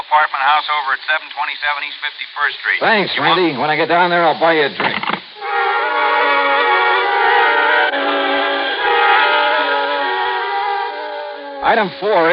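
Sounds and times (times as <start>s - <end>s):
speech: 0.1s - 5.6s, 11.6s - 12.3s
train heading down to New York running on rails: 5.4s - 12.3s.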